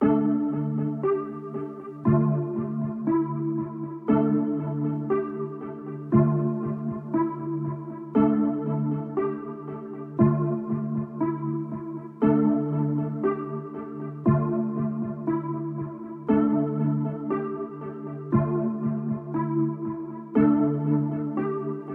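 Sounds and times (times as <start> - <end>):
chords in D minor at 118 BPM: 0.0 - 21.9.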